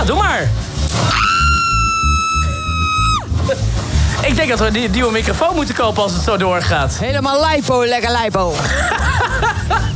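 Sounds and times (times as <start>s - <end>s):
speech: 0.0s - 1.5s, 4.2s - 9.9s
woman's loud high-pitched scream: 1.1s - 3.3s
laughter: 8.6s - 9.9s.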